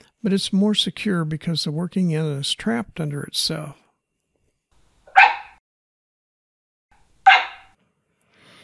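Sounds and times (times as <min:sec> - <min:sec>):
speech: 0:00.2 - 0:03.8
Australian Cattle Dog barking: 0:05.1 - 0:05.6, 0:07.3 - 0:07.8.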